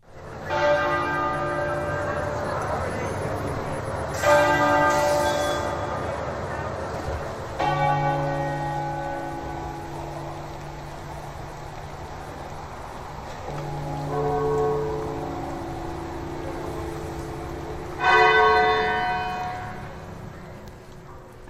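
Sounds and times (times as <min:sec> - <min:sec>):
church bells ringing at Westminster Abbey: 0:00.0 - 0:21.2.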